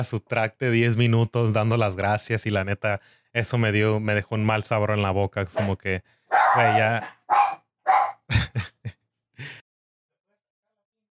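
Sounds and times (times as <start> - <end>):
speech: 0.0 - 7.4
female dog barking: 5.6 - 8.2
laughter: 8.3 - 9.6.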